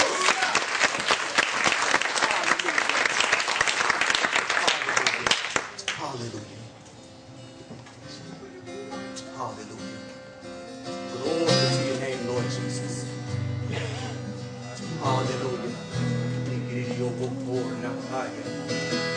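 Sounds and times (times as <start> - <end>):
room full of people clapping: 0.0 - 6.2
faint voices: 7.9 - 19.1.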